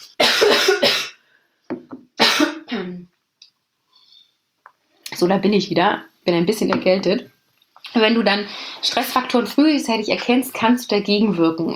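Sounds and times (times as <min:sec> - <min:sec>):
person coughing harshly: 0:00.0 - 0:01.2, 0:02.2 - 0:03.1
speech: 0:05.2 - 0:07.3, 0:07.9 - 0:11.7.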